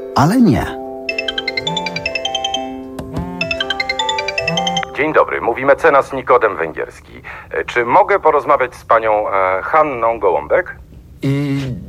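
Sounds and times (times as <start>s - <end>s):
speech: 0.2s - 0.8s, 5.0s - 11.8s
telephone ringing with electronic trill: 1.1s - 5.2s.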